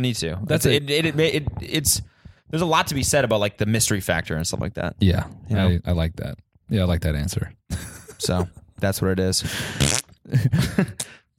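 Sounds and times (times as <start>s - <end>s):
speech: 0.0s - 11.2s
voice imitating a fart with buzzy sputtering bursts: 9.8s - 10.2s.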